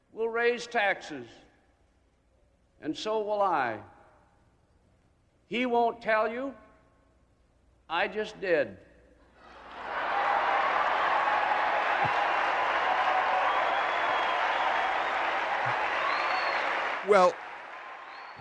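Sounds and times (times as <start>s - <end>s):
speech: 0.4s - 1.4s, 2.8s - 3.9s, 5.5s - 6.6s, 7.9s - 8.9s, 17.1s - 17.4s
convention crowd cheering in a big hall: 9.4s - 18.3s
convention crowd applause: 9.7s - 18.3s.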